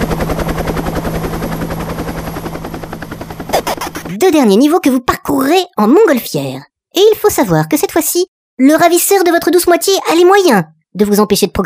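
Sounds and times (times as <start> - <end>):
helicopter rotor thumping in video game sound effect: 0.0 - 4.6
speech: 4.2 - 11.6.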